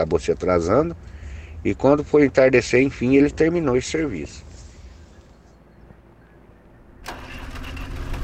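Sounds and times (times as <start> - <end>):
speech: 0.0 - 4.5
heavy tractor engine idling and starting: 7.0 - 8.2.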